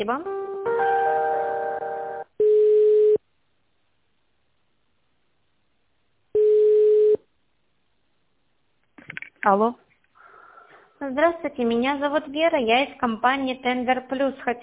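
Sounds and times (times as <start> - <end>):
speech: 0.0 - 0.9, 9.4 - 9.8, 11.0 - 14.6
chord-like telephone line tone during a call transfer: 0.2 - 3.2.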